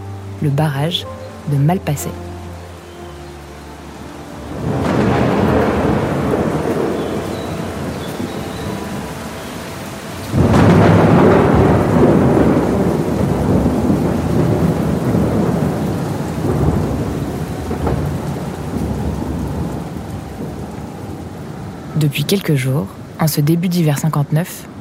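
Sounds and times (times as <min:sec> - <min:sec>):
torrential rain pouring in a heavy thunderstorm: 0:00.0 - 0:24.7
speech: 0:00.4 - 0:02.3, 0:22.1 - 0:24.7
loud thunderclap: 0:04.5 - 0:22.0.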